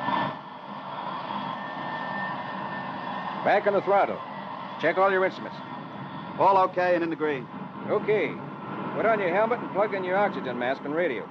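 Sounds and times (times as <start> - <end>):
jet aircraft auxiliary power unit running: 0.0 - 11.2
thin high whine of jet aircraft auxiliary power unit: 0.0 - 11.2
speech: 3.4 - 5.7, 6.4 - 11.2.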